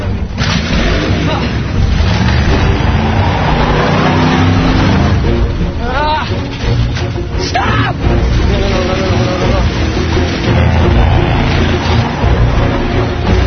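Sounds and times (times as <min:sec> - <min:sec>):
Camaro car engine revving: 0:00.0 - 0:07.3, 0:08.1 - 0:13.4.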